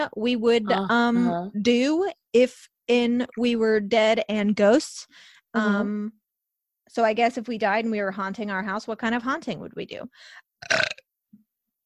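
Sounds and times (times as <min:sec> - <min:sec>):
speech: 0:00.0 - 0:06.2, 0:06.9 - 0:11.0
loud burp: 0:10.6 - 0:11.1.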